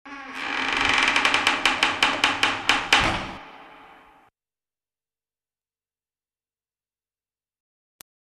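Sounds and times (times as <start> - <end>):
door: 1.0 - 4.0.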